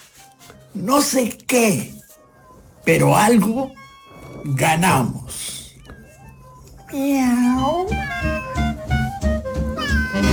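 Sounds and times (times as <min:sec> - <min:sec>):
speech: 0:00.7 - 0:02.0, 0:02.9 - 0:03.8, 0:04.4 - 0:05.5, 0:06.9 - 0:08.3
loud drawn-out cat meow: 0:03.7 - 0:10.3
steady rhythmic low pulse: 0:06.8 - 0:10.3
shorter cat-like cries: 0:07.2 - 0:09.0, 0:09.8 - 0:10.3.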